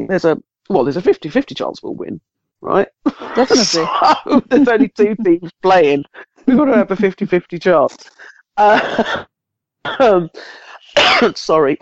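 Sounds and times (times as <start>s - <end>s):
speech: 0.0s - 11.8s
laughter: 3.0s - 7.3s, 8.1s - 9.3s
rough throaty hacking cough: 3.1s - 4.8s, 8.6s - 9.3s, 9.9s - 10.2s, 11.0s - 11.4s.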